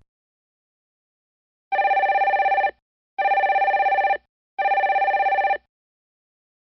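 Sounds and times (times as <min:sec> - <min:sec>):
telephone bell ringing in buzzing bursts: 0:01.7 - 0:05.7.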